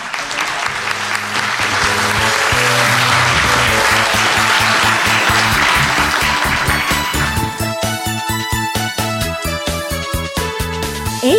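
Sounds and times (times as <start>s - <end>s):
audience applause: 0.0s - 8.7s
upbeat music: 0.7s - 11.3s.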